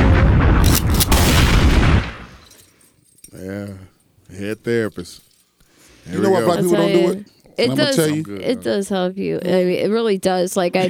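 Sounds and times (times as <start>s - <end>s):
bomb explosion sound effect with heavy rumbling boom and crackling bursts: 0.0s - 2.4s
speech: 4.3s - 5.3s, 6.0s - 10.8s.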